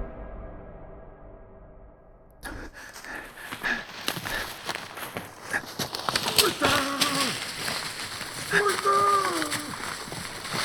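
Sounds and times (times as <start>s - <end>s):
running footsteps on wet or soft ground of a dark forest path: 2.4s - 10.6s
loud shouting voices: 6.2s - 7.5s, 8.4s - 10.1s.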